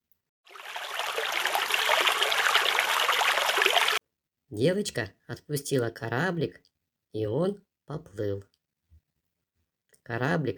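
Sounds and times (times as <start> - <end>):
spring snowmelt streams trickling and babbling: 0.5 - 4.0
speech: 4.5 - 8.5, 10.1 - 10.5.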